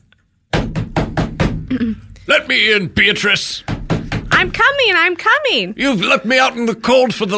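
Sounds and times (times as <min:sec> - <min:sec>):
knocking on a door: 0:00.5 - 0:01.7, 0:03.4 - 0:05.1
speech: 0:01.8 - 0:03.7, 0:04.4 - 0:07.3.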